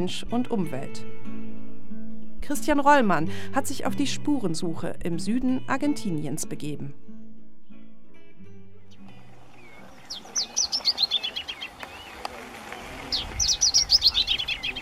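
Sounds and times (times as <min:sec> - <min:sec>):
speech: 0:00.0 - 0:01.3, 0:02.4 - 0:07.1
birds chirping in a garden: 0:08.8 - 0:14.7.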